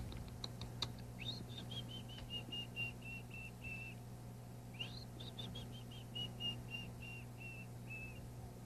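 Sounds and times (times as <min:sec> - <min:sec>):
quiet hum: 0:00.0 - 0:08.6
person whistling to a canary: 0:01.2 - 0:04.0, 0:04.8 - 0:08.2.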